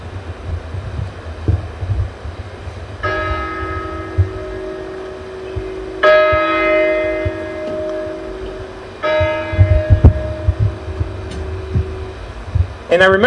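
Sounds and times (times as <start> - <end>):
low rumbling background: 0.0 - 13.2
church bells tolling: 3.0 - 12.5.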